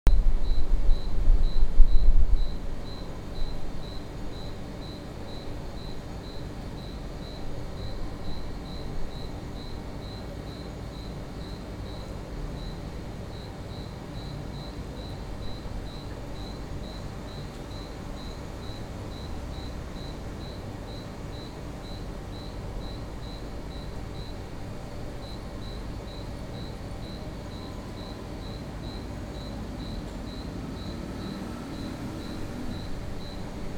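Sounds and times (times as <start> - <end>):
crickets chirping at night from a balcony: 0.1 - 33.7.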